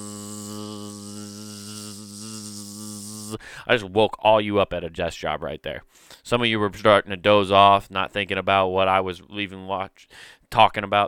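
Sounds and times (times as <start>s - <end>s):
person imitating a mosquito with a nasal buzzing hum: 0.0s - 3.6s
speech: 3.3s - 11.0s.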